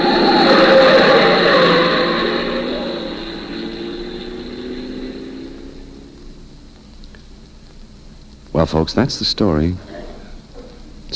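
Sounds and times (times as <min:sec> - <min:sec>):
car engine roaring as it comes fast around a sharp corner: 0:00.0 - 0:07.7
speech: 0:08.6 - 0:09.9.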